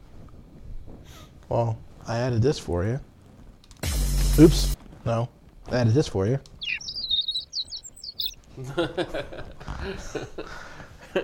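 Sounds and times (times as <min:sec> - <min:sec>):
speech: 0:01.5 - 0:03.1, 0:04.4 - 0:06.5, 0:08.6 - 0:11.2
birds chirping: 0:06.5 - 0:08.4.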